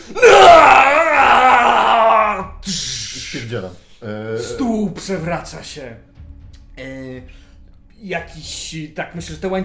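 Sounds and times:
person's voice imitating a monstrous roar: 0.2 - 2.5
speech: 3.5 - 6.1, 6.8 - 9.6.

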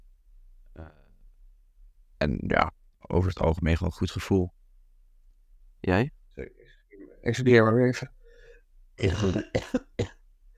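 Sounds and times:
speech: 2.2 - 4.6, 5.8 - 6.6, 7.2 - 8.2, 9.0 - 10.2
person with a slight cold clearing throat: 9.0 - 10.2
person with a slight cold coughing: 9.0 - 10.2.

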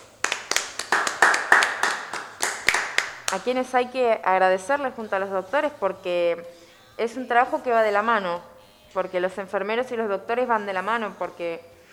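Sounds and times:
small group applauding: 0.0 - 3.4
speech: 3.3 - 11.7.

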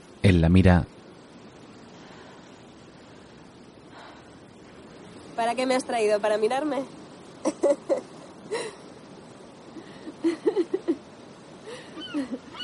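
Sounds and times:
soft steady hiss: 0.0 - 12.6
speech: 0.2 - 1.0, 5.5 - 8.8, 12.2 - 12.6
seagull calling above a rock on a sandy beach: 11.8 - 12.6.

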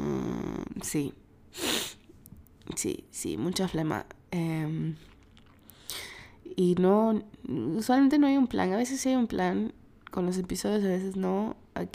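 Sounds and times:
speech: 0.8 - 1.7, 2.8 - 5.1, 6.5 - 11.9
woman sneezing: 1.6 - 2.1
faint breath: 5.6 - 6.4.

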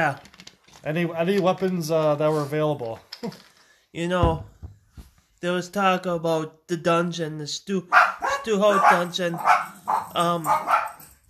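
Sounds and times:
speech: 0.0 - 4.5, 5.4 - 10.9
dogs barking: 7.9 - 11.2.

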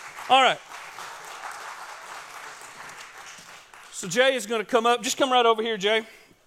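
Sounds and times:
sizable audience applauding to welcome a guest to the stage: 0.0 - 4.4
speech: 0.3 - 0.7, 4.0 - 6.2.

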